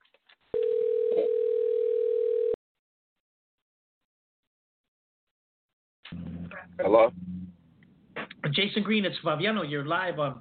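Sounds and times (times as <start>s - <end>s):
dial pad blips: 0.6s - 2.6s
telephone tone: 0.6s - 2.6s
speech: 6.1s - 7.4s, 8.4s - 10.4s.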